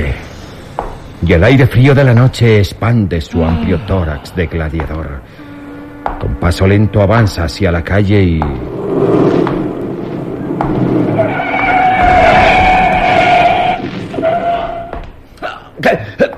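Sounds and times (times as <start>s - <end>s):
speech: 1.3s - 5.4s, 6.1s - 9.6s
car engine rumble: 5.4s - 13.2s
car tires screeching in a long skid: 6.1s - 15.0s.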